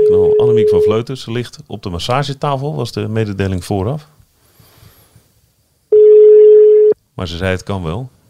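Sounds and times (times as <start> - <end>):
single-pitched telephone ringback tone during outgoing call: 0.0 - 0.9, 5.9 - 7.0
speech: 0.7 - 4.2, 7.2 - 8.2.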